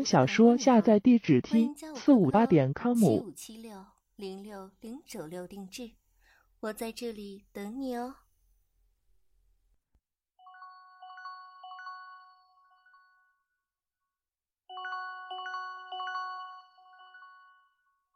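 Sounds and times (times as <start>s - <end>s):
speech: 0.0s - 6.0s, 6.6s - 8.2s
melodic electronic phone ringtone for an incoming call: 10.4s - 13.4s, 14.7s - 18.0s.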